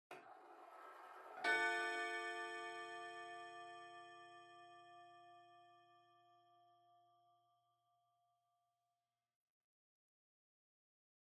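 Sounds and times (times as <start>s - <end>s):
distant short pendulum clock chime: 0.7s - 7.2s.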